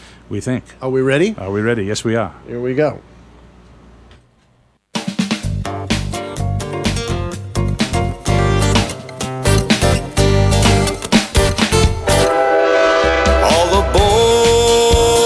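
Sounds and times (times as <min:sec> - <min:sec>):
speech: 0:00.3 - 0:03.1
upbeat movie soundtrack song: 0:05.0 - 0:15.2
train horn-like blasts: 0:12.0 - 0:15.2.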